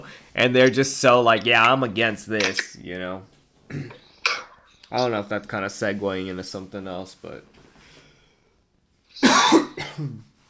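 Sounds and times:
speech: 0.0 - 4.0, 4.9 - 7.6, 9.3 - 10.3
person coughing: 3.7 - 4.5, 9.2 - 10.3.

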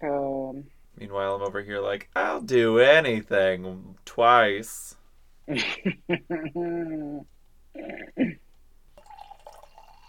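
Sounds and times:
speech: 1.2 - 8.3
wine being poured from a bottle into a glass: 8.9 - 10.0.

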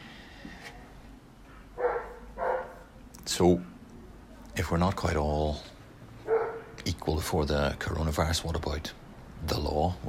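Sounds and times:
low steady noise: 0.0 - 10.0
dog barking in a neighbouring garden: 1.8 - 2.9, 6.2 - 6.8
speech: 3.3 - 3.7, 4.6 - 5.7, 6.9 - 10.0.

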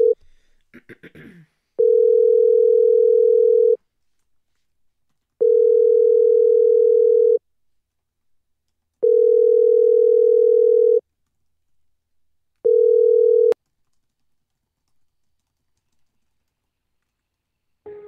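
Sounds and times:
telephone line ringback tones on a call: 1.8 - 3.8, 5.4 - 7.4, 9.0 - 11.0, 12.6 - 13.6.

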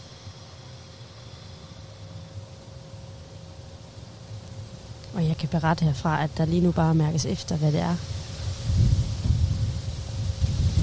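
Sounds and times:
speech: 5.2 - 8.2
steady wind buffeting across the microphone: 5.4 - 10.8.

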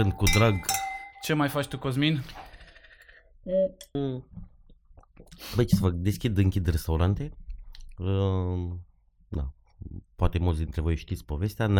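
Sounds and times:
glasses clinking in a toast: 0.0 - 2.3
speech: 0.0 - 2.5, 3.4 - 4.5, 5.2 - 7.4, 8.0 - 11.7.

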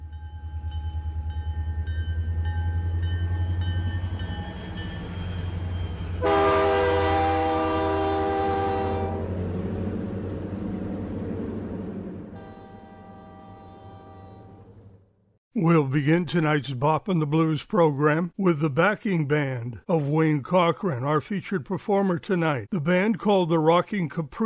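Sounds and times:
train rumbling along rails: 0.0 - 15.0
loud sustained train horn blast: 6.2 - 9.7, 12.3 - 14.9
speech: 15.6 - 24.4.

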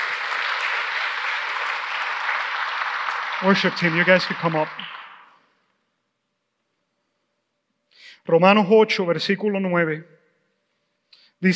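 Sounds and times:
sustained applause from a sizable crowd: 0.0 - 5.4
speech: 3.4 - 4.9, 8.3 - 10.2, 11.4 - 11.5.

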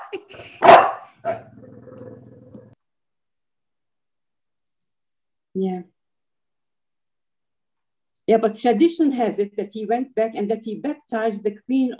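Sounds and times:
dog barking: 0.6 - 1.4
speech: 8.3 - 11.9.

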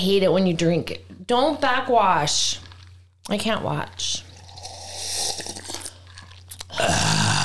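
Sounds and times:
speech: 0.0 - 2.6, 3.2 - 4.3
ice cubes being chewed: 4.3 - 6.8.

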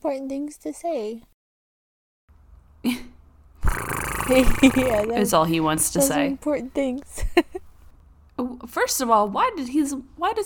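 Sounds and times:
speech: 0.0 - 1.3, 2.8 - 3.1, 3.7 - 7.6, 8.4 - 10.4
cat rubbing and scraping on a microphone: 3.6 - 5.2.

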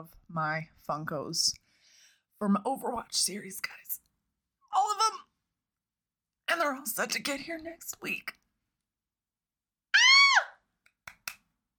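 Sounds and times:
speech: 0.0 - 1.6, 2.4 - 4.0, 6.5 - 8.4
excited high-pitched human scream: 9.9 - 10.6.

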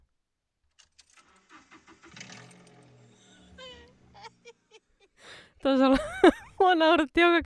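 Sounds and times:
Toyota Aygo small car engine without muffler starting and revving: 0.8 - 4.7
laughter: 1.6 - 6.7
speech: 5.6 - 7.4.

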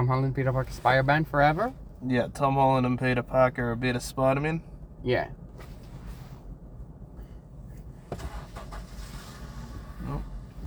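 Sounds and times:
car engine rumbling as the vehicle pulls away: 0.0 - 10.6
speech: 0.1 - 5.4
car clunks: 7.2 - 10.6.

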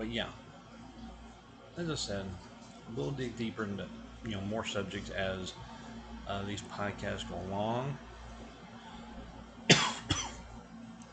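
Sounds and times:
speech: 0.0 - 0.4, 1.8 - 5.7, 6.3 - 8.1
person coughing from a tickle in the throat: 9.7 - 10.5.

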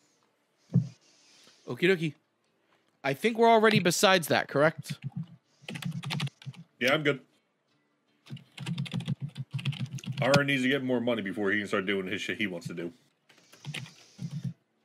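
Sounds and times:
speech: 1.7 - 2.2, 3.0 - 5.2, 6.8 - 7.3, 10.2 - 13.0
computer keyboard typing: 4.8 - 7.0, 8.3 - 10.5, 12.6 - 14.8.

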